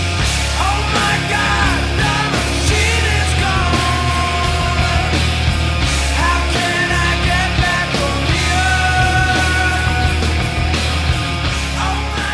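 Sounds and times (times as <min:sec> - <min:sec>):
distorted electric guitars: 0:00.0 - 0:12.3
driving rock drums: 0:00.0 - 0:12.3
heavy bass guitar: 0:00.0 - 0:12.3
man singing lead vocals in a rock song: 0:00.4 - 0:10.6, 0:11.6 - 0:12.3.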